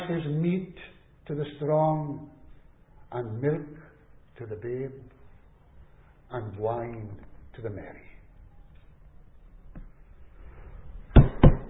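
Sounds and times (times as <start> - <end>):
speech: 0.1 - 2.4, 3.1 - 5.2, 6.3 - 8.1
knocking on a door: 11.2 - 11.6.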